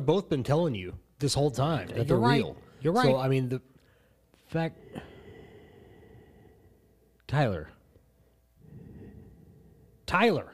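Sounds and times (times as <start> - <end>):
speech: 0.0 - 3.7, 4.5 - 5.1, 7.3 - 7.8, 10.1 - 10.5
person with allergies breathing heavily into a microphone: 3.8 - 7.3, 8.2 - 10.1.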